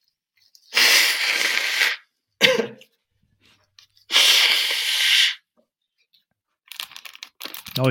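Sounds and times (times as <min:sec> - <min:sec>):
quick snuffly sniff: 0:00.7 - 0:02.0, 0:04.1 - 0:05.4
person blowing nose loudly during a live radio broadcast: 0:00.7 - 0:02.2, 0:04.1 - 0:05.5.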